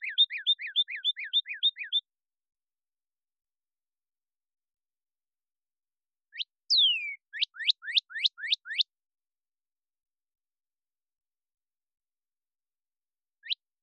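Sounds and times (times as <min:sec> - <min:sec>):
Cardinal singing fast two-part whistled notes: 0:00.0 - 0:02.1, 0:06.3 - 0:08.9, 0:13.4 - 0:13.8.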